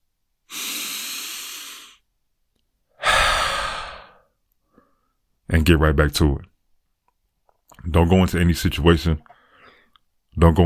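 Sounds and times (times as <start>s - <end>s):
deep breathing in through nose and out through mouth: 0.5s - 2.0s, 2.9s - 5.2s, 9.3s - 10.0s
speech: 5.5s - 6.5s, 7.8s - 9.3s, 10.4s - 10.6s.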